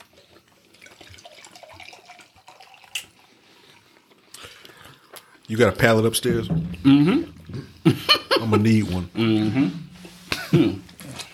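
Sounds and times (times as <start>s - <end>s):
drink poured into a cup: 0.0s - 5.8s
speech: 5.5s - 9.8s.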